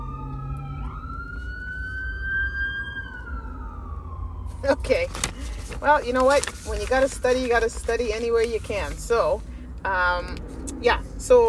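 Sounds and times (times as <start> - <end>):
ambulance and police car sirens passing: 0.0 - 8.2
low rumble: 2.9 - 11.4
speech: 4.6 - 11.4.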